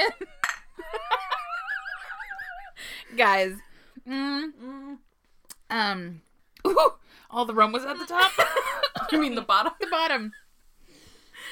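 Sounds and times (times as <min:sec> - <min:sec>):
speech: 0:00.0 - 0:00.4, 0:03.1 - 0:05.1, 0:05.7 - 0:10.4
drinking glasses clinking in a toast: 0:00.4 - 0:00.9.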